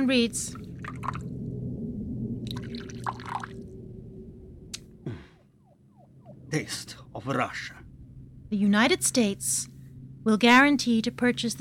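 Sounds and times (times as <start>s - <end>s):
speech: 0.0s - 1.2s, 6.5s - 7.8s, 8.5s - 11.5s
low steady hum: 0.0s - 11.5s
liquid dripping: 0.6s - 1.4s, 2.4s - 3.7s
vodka pouring into a glass: 2.5s - 3.5s.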